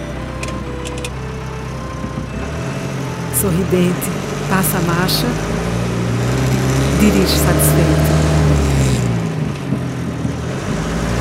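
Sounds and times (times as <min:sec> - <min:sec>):
truck engine starting and idling: 0:00.0 - 0:11.1
brief clicks as the truck engine turns over: 0:00.3 - 0:03.2
speech: 0:03.4 - 0:05.6, 0:07.0 - 0:08.3.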